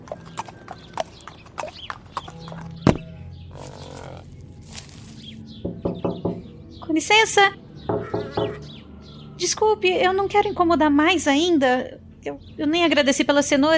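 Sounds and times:
horse hooves clip-clopping in a steady trot: 0:00.0 - 0:04.3
shuffling: 0:03.6 - 0:05.4
sharp knocks on a house window: 0:05.6 - 0:06.5, 0:07.9 - 0:08.6
speech: 0:07.0 - 0:07.6, 0:09.5 - 0:13.7.

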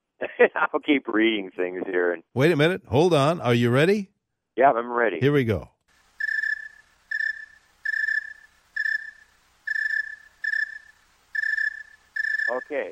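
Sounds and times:
speech: 0:00.4 - 0:05.7, 0:12.7 - 0:12.9
cricket chirping slowly on a cool night: 0:06.0 - 0:12.9.

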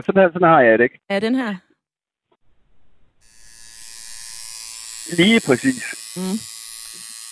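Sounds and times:
speech: 0:00.0 - 0:01.7, 0:05.1 - 0:06.5
tattoo machine buzzing with a continuous electric whine: 0:03.2 - 0:07.3.

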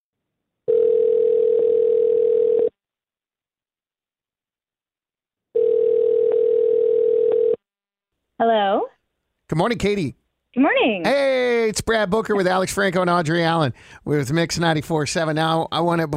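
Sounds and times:
phone line ringback tone while placing a call: 0:00.7 - 0:02.7, 0:05.6 - 0:07.6
speech: 0:08.4 - 0:08.9, 0:09.6 - 0:16.1.

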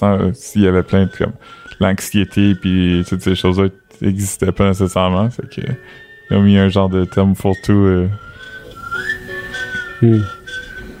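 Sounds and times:
speech: 0:00.0 - 0:08.3, 0:10.0 - 0:10.4
person whistling a slow mournful melody: 0:07.1 - 0:10.9.

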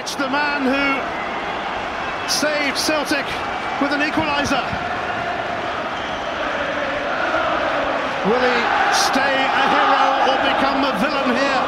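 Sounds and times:
speech: 0:00.1 - 0:01.4, 0:02.3 - 0:05.0, 0:08.2 - 0:11.6
huge football stadium crowd singing loudly: 0:04.6 - 0:10.6.

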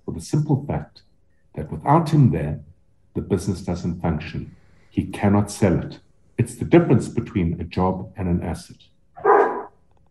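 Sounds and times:
faint low noise: 0:00.0 - 0:10.0
speech: 0:00.2 - 0:08.9
dog barking: 0:09.2 - 0:09.7.

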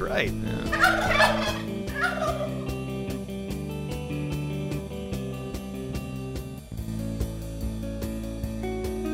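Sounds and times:
speech: 0:00.0 - 0:01.7
steady rhythmic music bed: 0:00.0 - 0:09.1
turkey gobbling: 0:00.4 - 0:02.8.

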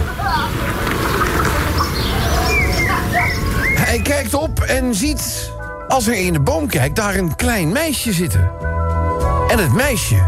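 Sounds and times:
steady rumbling noise: 0:00.0 - 0:03.8
blackbird singing fluting whistled phrases: 0:00.3 - 0:04.3
speech: 0:04.7 - 0:08.7, 0:09.5 - 0:10.2.

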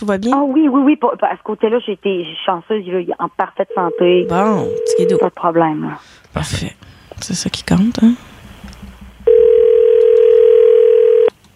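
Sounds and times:
speech: 0:00.0 - 0:08.3
telephone dial tone on an outgoing call: 0:03.7 - 0:05.2, 0:09.3 - 0:11.3.

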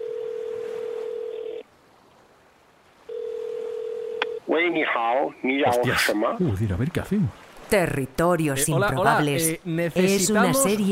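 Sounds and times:
telephone dialing beeps over a speakerphone: 0:00.0 - 0:01.6, 0:03.1 - 0:04.4
speech: 0:04.6 - 0:10.8.

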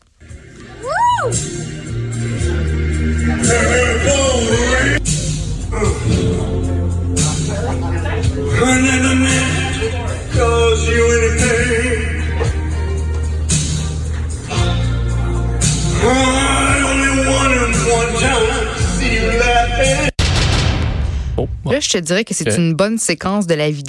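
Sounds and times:
karaoke backing music: 0:00.0 - 0:22.9
speech: 0:01.2 - 0:01.9, 0:21.8 - 0:23.8
man belting out a song at karaoke: 0:02.6 - 0:05.0, 0:08.5 - 0:12.4, 0:15.9 - 0:20.2
sharp knock: 0:20.2 - 0:21.6.

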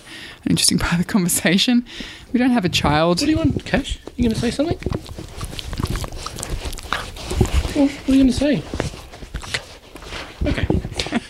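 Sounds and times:
speech: 0:00.5 - 0:05.2, 0:07.8 - 0:08.8
dog grunting and snuffling: 0:03.2 - 0:11.2.

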